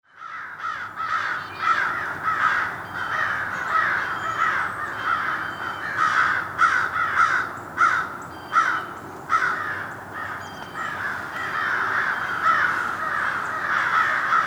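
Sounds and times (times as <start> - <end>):
group of crows mobbing and cawing in Somerset New Jersey: 0.1 - 14.4.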